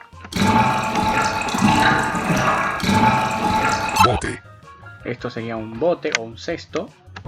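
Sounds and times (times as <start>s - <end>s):
rushing water pouring into a sewer drain: 0.4s - 4.2s
speech: 5.1s - 7.0s.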